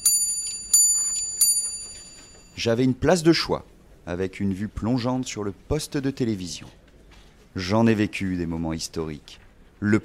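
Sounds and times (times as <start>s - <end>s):
62 cm pendulum clock on a wall-fixed base chiming bright bell tones: 0.0s - 2.6s
speech: 2.6s - 6.8s, 7.6s - 10.0s.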